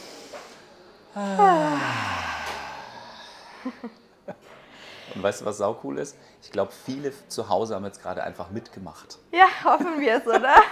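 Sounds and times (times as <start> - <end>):
group exhaling together through the mouth with voice: 0.0 - 3.8
speech: 1.2 - 2.1, 3.6 - 4.5, 5.1 - 10.7.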